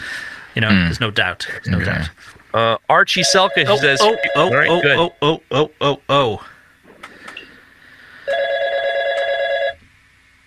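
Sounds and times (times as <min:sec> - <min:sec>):
speech: 0:00.6 - 0:06.5
telephone ringing with an incoming call: 0:03.2 - 0:05.2, 0:08.3 - 0:09.8.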